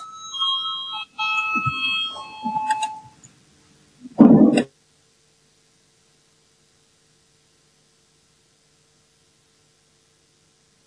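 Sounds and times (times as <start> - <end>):
electronic parliament voting bell ringing: 0.0 - 3.2.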